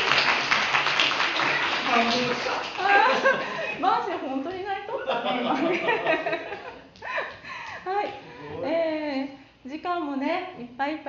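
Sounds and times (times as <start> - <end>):
crowd applause: 0.0 - 3.8
laughter: 1.4 - 4.0, 4.9 - 7.4
speech: 2.0 - 6.7, 9.7 - 11.0.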